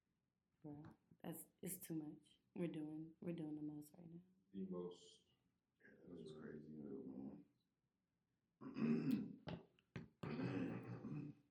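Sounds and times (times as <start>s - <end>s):
speech: 0.6s - 7.5s, 8.6s - 9.4s
person clearing throat: 8.6s - 9.5s, 10.2s - 11.4s.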